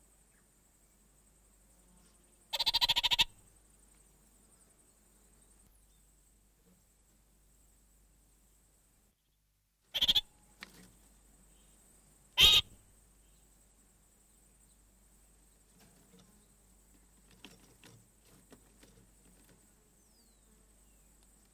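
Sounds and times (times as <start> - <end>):
faint high hiss: 0.0 - 17.2, 18.1 - 21.5
orange-fronted parakeet chattering: 10.0 - 10.2, 12.4 - 12.6.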